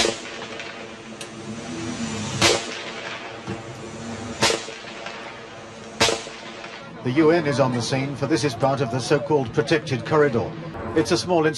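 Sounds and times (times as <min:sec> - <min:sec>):
gunshots of forces returning fire after a sniper attack: 0:00.0 - 0:01.2, 0:02.4 - 0:03.4, 0:04.2 - 0:07.0
low steady rumble: 0:00.0 - 0:11.5
speech: 0:07.0 - 0:11.5.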